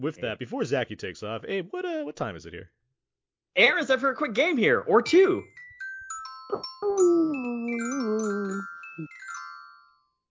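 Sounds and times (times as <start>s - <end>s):
speech: 0.0s - 2.8s, 3.6s - 5.7s, 6.5s - 9.2s
bright bells ringing: 4.0s - 10.2s.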